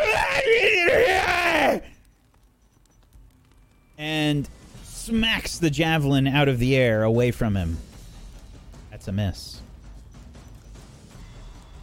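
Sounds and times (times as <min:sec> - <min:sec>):
video game creature screaming at the player: 0:00.0 - 0:01.8
speech: 0:04.3 - 0:07.9, 0:09.0 - 0:09.7.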